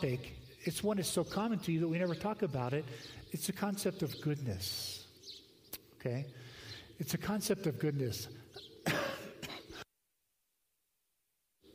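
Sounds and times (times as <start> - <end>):
speech: 0.0 - 5.0, 6.0 - 9.0
person coughing harshly: 8.8 - 9.8.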